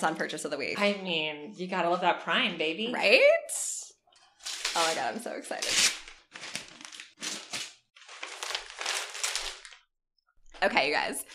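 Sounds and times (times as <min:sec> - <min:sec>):
speech: 0:00.0 - 0:03.9, 0:04.7 - 0:06.0, 0:10.6 - 0:11.3
double-sided wrapping paper crinkling as gift is torn open: 0:04.3 - 0:09.9.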